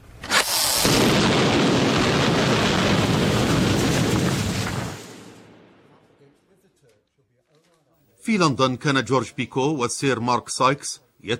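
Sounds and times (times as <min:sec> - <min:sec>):
crackling debris: 0:00.2 - 0:06.9
massive explosion of a bridge being blown up: 0:00.8 - 0:06.2
speech: 0:08.3 - 0:11.3.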